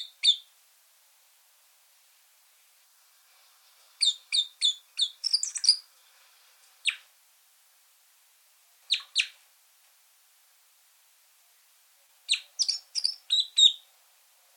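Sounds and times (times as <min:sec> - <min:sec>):
red crossbill giving high chip calls: 0:00.0 - 0:00.5, 0:04.0 - 0:05.8, 0:06.8 - 0:07.0, 0:08.9 - 0:09.4, 0:12.3 - 0:13.8.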